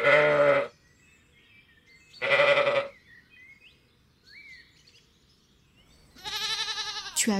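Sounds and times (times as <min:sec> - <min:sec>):
sheep bleating: 0:00.0 - 0:00.7, 0:02.2 - 0:02.9, 0:06.2 - 0:07.3
faint birds chirping: 0:00.0 - 0:07.3.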